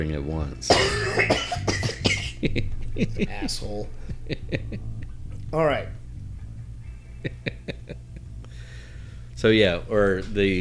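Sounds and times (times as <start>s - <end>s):
speech: 0.0s - 1.8s, 2.5s - 6.0s, 7.2s - 8.0s, 9.4s - 10.5s
laughter: 0.0s - 10.5s
person coughing: 0.7s - 5.7s.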